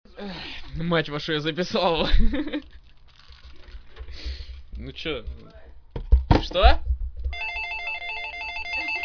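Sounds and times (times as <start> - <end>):
speech: 0.2 - 2.8, 4.8 - 5.6, 6.5 - 6.9
telephone ringing with an electronic warbling tone: 7.3 - 9.0.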